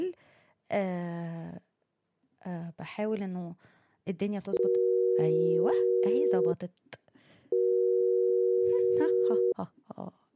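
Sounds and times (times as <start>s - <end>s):
speech: 0.7s - 1.7s, 2.4s - 6.9s, 9.0s - 10.2s
telephone ringing tone during an outgoing call: 4.6s - 6.5s, 7.5s - 9.5s.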